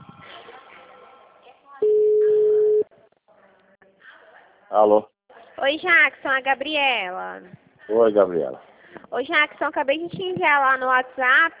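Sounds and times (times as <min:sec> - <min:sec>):
telephone ringback tone while placing a call: 0:01.8 - 0:02.8
speech: 0:04.7 - 0:11.5.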